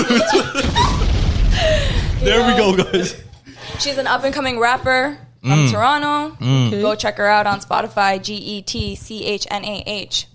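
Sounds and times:
people laughing: 0.0s - 3.8s
speech: 0.1s - 0.8s, 2.2s - 3.2s, 3.8s - 10.3s
explosion sound effect with deep booming rumble: 0.4s - 2.9s.

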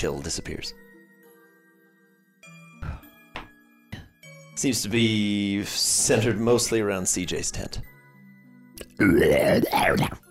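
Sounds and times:
speech: 0.0s - 0.9s, 4.6s - 7.9s, 9.0s - 10.2s
person loudly imitating their own snoring with their voice: 8.8s - 10.2s.

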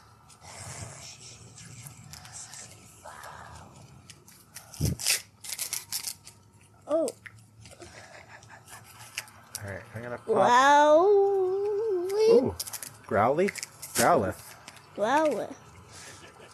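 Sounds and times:
soft rustling and handling noise: 1.7s - 7.9s, 11.5s - 15.6s
scissors cutting a crinkly foil card pack: 4.3s - 6.4s, 11.6s - 15.4s
speech: 10.1s - 11.2s, 12.4s - 14.4s, 15.0s - 15.6s.

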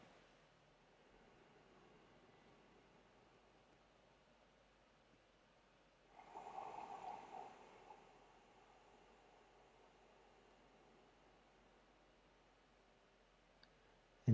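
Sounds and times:
faint hiss: 0.0s - 14.3s
person breathing, inhaling and exhaling: 0.9s - 3.8s, 6.1s - 12.0s.

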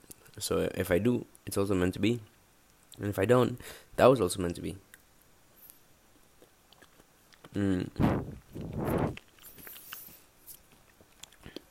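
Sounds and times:
speech: 0.4s - 2.4s, 3.0s - 4.9s, 7.6s - 9.2s
chewing the crunchy part of a peanut: 4.9s - 11.6s
mouth noises: 6.4s - 9.9s.

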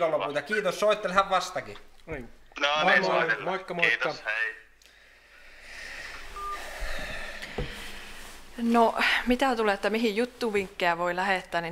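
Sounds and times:
speech: 0.0s - 4.6s, 8.6s - 11.7s
telephone tones as a call disconnects: 6.4s - 6.6s.

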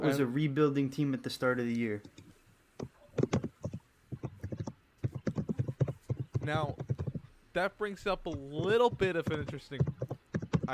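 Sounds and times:
speech: 0.0s - 2.9s, 6.5s - 6.9s, 7.6s - 10.0s
fast typing on a keyboard: 2.8s - 7.3s, 8.2s - 10.7s.

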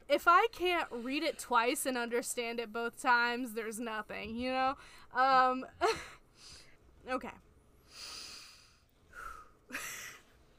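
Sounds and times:
speech: 0.1s - 8.1s
actor's sharp quick inhale before speaking: 7.8s - 9.6s.

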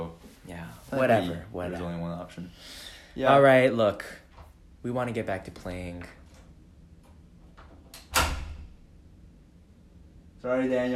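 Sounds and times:
quiet room noise: 0.0s - 10.9s
speech: 0.9s - 4.2s, 4.8s - 6.2s, 10.4s - 10.9s
door thudding shut: 8.0s - 8.8s.

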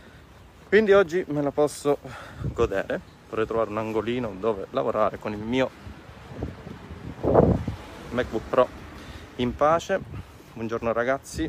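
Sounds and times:
speech: 0.7s - 6.5s, 8.2s - 8.8s, 9.4s - 11.4s
wind buffeting a microphone outdoors: 2.1s - 4.5s, 5.1s - 11.4s.

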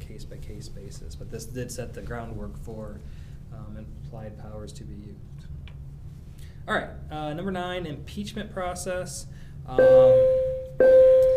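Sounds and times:
speech: 0.2s - 5.5s, 6.6s - 11.0s
bell struck and ringing: 9.8s - 11.3s.

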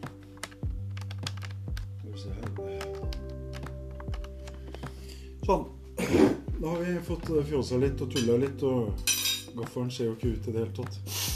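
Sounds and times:
keyboard being plugged in and handled, clicks and knocks: 0.0s - 5.0s
speech: 5.5s - 11.2s.

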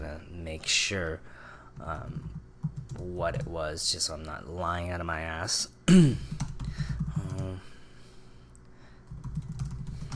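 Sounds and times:
speech: 0.5s - 6.5s
typing on a computer keyboard: 2.2s - 3.5s, 6.3s - 7.5s, 9.1s - 10.1s.

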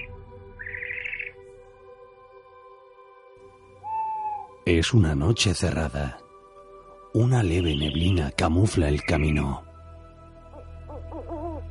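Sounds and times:
owls hooting at night: 0.0s - 1.4s, 3.8s - 4.6s, 10.5s - 11.6s
speech: 4.7s - 6.2s, 7.1s - 9.7s.

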